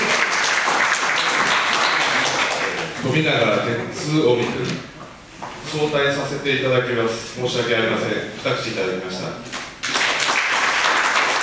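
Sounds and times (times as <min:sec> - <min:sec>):
audience applause: 0:00.0 - 0:03.0, 0:09.8 - 0:11.4
speech: 0:03.1 - 0:04.9, 0:05.7 - 0:09.5.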